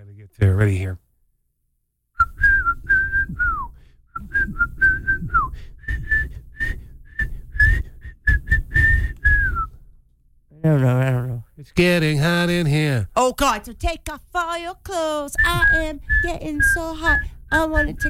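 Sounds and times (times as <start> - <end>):
speech: 0.3 - 1.0, 10.6 - 18.0
person whistling a catchy pop melody: 2.2 - 9.8, 15.4 - 18.0.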